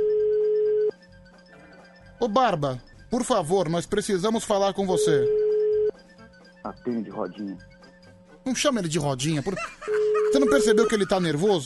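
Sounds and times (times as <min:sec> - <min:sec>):
telephone ringback tone from a phone call: 0:00.0 - 0:01.0, 0:04.9 - 0:06.0, 0:09.9 - 0:11.0
speech: 0:02.2 - 0:05.4, 0:06.7 - 0:07.8, 0:08.5 - 0:11.6
laughter: 0:09.3 - 0:11.4.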